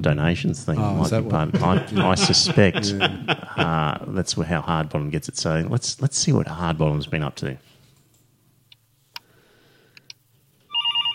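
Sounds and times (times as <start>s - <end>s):
speech: 0.0s - 7.7s
low steady hum: 0.0s - 11.1s
laughter: 1.0s - 4.1s
telephone ringing with bright warbling electronic trill: 10.7s - 11.1s.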